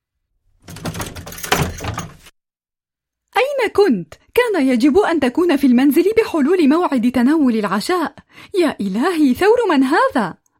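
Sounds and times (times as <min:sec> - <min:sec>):
house door creaking open: 0:00.6 - 0:02.3
speech: 0:03.6 - 0:10.4.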